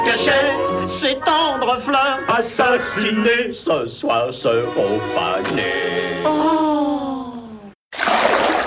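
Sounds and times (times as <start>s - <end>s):
person singing: 0.0s - 7.4s
speech: 0.1s - 7.0s
paint splashing on flowers: 7.9s - 8.6s.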